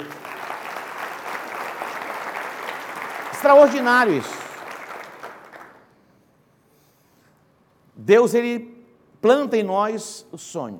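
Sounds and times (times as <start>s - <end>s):
congregation clapping steadily: 0.0s - 6.0s
speech: 3.4s - 4.4s, 8.1s - 10.7s.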